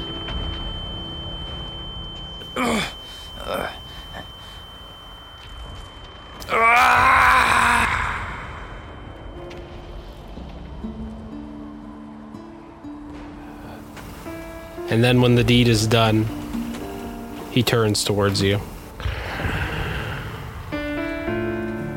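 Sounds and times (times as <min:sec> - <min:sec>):
low murky background: 0:00.0 - 0:21.9
short anguished cries: 0:02.4 - 0:04.6, 0:06.4 - 0:09.1
loud drawn-out scream: 0:02.5 - 0:03.8, 0:06.4 - 0:08.8
quieter groaning: 0:02.5 - 0:04.3, 0:06.4 - 0:08.8
speech: 0:15.0 - 0:16.4, 0:17.6 - 0:18.7.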